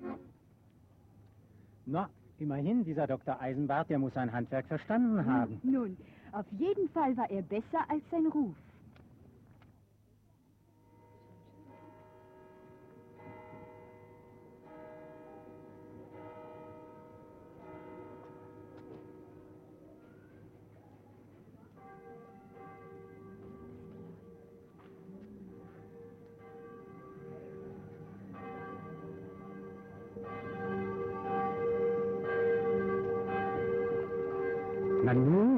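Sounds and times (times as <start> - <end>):
speech: 1.9 - 8.6
church bells pealing for civic ringing: 10.8 - 35.5.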